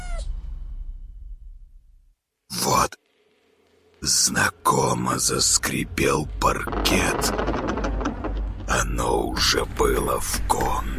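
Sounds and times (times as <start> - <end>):
kitten squeaking and meowing: 0.0 - 0.3
low rumbling background: 0.0 - 10.9
speech: 4.0 - 7.8, 8.7 - 10.9.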